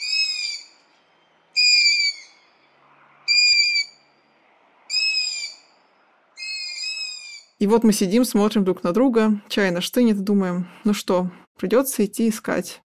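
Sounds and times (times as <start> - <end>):
long-eared owl chicks begging squeaks heard from a window in the evening: 0.0 - 0.8, 1.5 - 2.5, 3.3 - 4.0, 4.9 - 5.8, 6.4 - 7.6
speech: 7.6 - 12.8.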